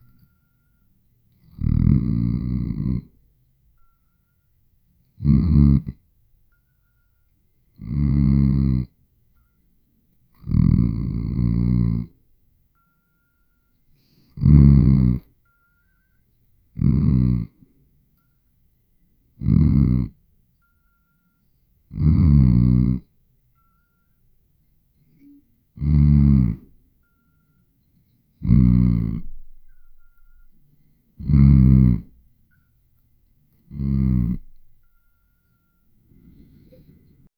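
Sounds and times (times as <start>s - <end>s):
person snoring softly while asleep: 1.4s - 3.2s, 5.2s - 6.0s, 7.8s - 8.9s, 10.4s - 12.2s, 14.0s - 15.3s, 16.8s - 17.7s, 19.4s - 20.2s, 21.9s - 23.1s, 25.1s - 26.7s, 28.4s - 29.9s, 31.2s - 32.2s, 33.7s - 34.9s.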